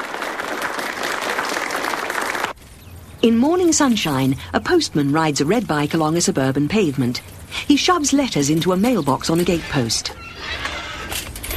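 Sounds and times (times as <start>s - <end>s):
crowd applauding a guest: 0.0s - 2.6s
speech: 3.2s - 10.7s.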